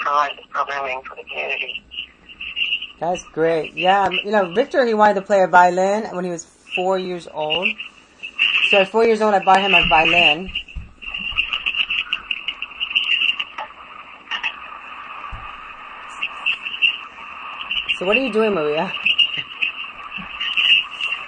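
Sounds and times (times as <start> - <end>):
speech: 0.1 - 2.0, 3.0 - 7.9, 8.7 - 10.6, 18.0 - 19.1
pet bird whistling and trilling: 1.7 - 4.6, 6.7 - 13.6, 15.3 - 21.2.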